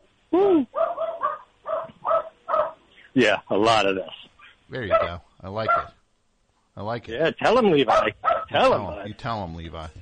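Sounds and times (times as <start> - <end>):
dog barking: 0.8 - 2.8, 4.8 - 6.0, 7.8 - 8.8
speech: 3.2 - 6.0, 6.8 - 10.0.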